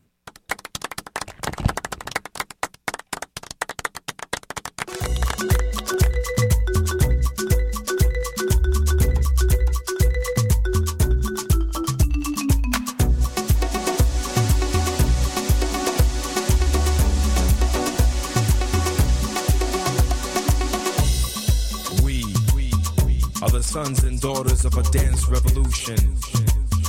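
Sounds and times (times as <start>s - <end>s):
sharp rhythmic clap-like beats: 0.0s - 26.8s
radio show musical interlude with deep bass and sustained melody: 5.0s - 26.8s
speech: 23.9s - 26.4s.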